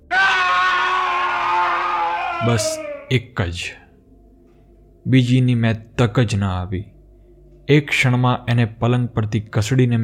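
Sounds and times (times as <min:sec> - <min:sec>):
old man's long death scream: 0:00.0 - 0:03.2
speech: 0:02.4 - 0:03.8, 0:05.0 - 0:06.9, 0:07.7 - 0:10.0.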